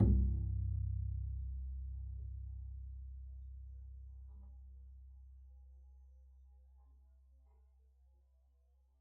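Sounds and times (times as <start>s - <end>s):
double bass pizzicato on C1: 0.0s - 5.2s.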